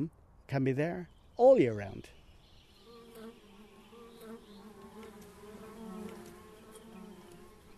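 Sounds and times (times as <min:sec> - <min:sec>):
speech: 0:00.0 - 0:02.2
faint outdoor ambience: 0:00.0 - 0:07.7
bumblebee buzzing while hovering: 0:02.8 - 0:07.7.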